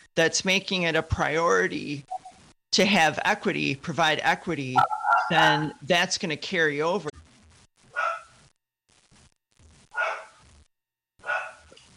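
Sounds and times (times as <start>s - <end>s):
speech: 0.2s - 7.1s
dog barking: 8.0s - 8.3s, 10.0s - 10.4s, 11.2s - 11.7s.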